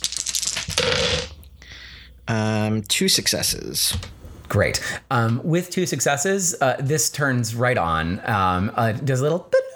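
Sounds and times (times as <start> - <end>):
dice clattering across a hard tabletop: 0.0 - 1.4
speech: 2.3 - 9.6.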